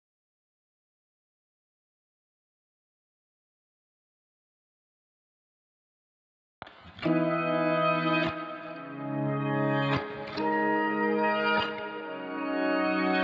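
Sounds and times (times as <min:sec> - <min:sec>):
reversed guitar in G sharp minor: 0:06.6 - 0:13.2.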